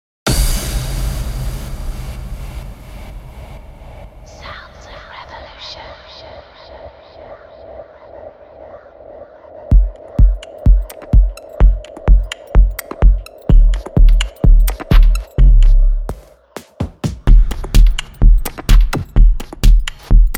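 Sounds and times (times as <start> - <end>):
kick drum: 9.7 - 20.3.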